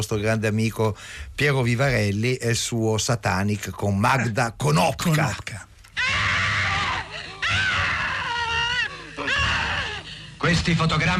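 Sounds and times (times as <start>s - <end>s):
speech: 0.0s - 5.7s, 10.4s - 11.1s
gasping: 5.9s - 10.4s
woman's bloodcurdling scream from a film trailer: 6.0s - 10.0s.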